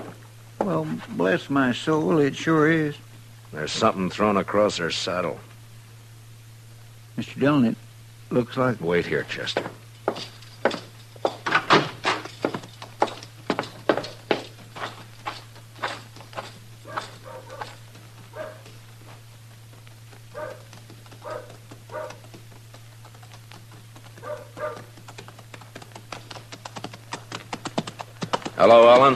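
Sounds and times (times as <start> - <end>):
low steady hum: 0.0 - 29.1
speech: 0.6 - 5.5, 7.2 - 10.3
horses walking up the street, hooves clip-clopping: 9.2 - 29.1.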